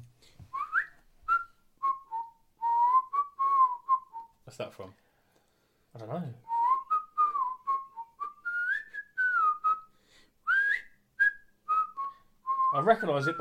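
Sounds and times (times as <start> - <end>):
person whistling a song's whistle interlude melody: 0.5 - 4.4, 6.5 - 13.3
speech: 4.6 - 5.0, 6.0 - 6.5, 12.7 - 13.3.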